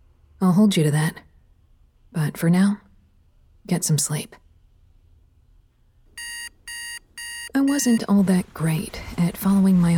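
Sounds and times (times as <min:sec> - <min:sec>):
speech: 0:00.5 - 0:01.3, 0:02.1 - 0:02.8, 0:03.6 - 0:04.4, 0:07.6 - 0:09.9
alarm clock beeping: 0:06.2 - 0:08.2.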